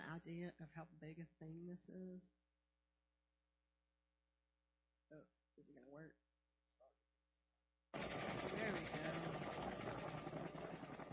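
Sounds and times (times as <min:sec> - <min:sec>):
speech: 0:00.2 - 0:02.4, 0:05.1 - 0:06.9, 0:07.9 - 0:09.6
helicopter engine and rotor roar: 0:08.0 - 0:11.1.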